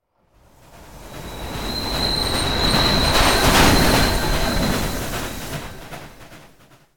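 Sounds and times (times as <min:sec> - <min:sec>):
train passing: 0:00.2 - 0:06.9.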